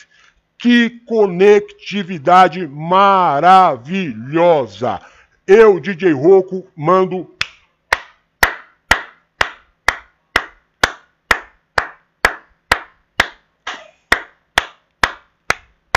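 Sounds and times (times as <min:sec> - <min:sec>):
speech: 0:00.0 - 0:07.4
single pair of hands clapping: 0:07.4 - 0:13.5, 0:14.1 - 0:15.9.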